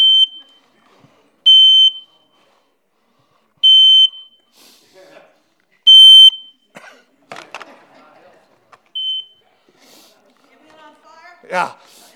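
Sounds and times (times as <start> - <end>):
household smoke alarm high-pitched beeps: 0.0 - 0.6, 1.5 - 2.3, 3.6 - 4.5, 5.9 - 6.6, 9.0 - 9.4
laughter: 6.7 - 8.9
speech: 11.5 - 11.9.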